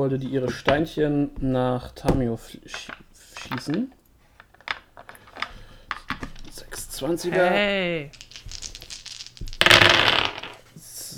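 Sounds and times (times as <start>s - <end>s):
speech: 0.0s - 4.0s, 7.0s - 8.2s
many dice rolled across a hard surface in a tabletop role-playing game: 2.7s - 10.6s.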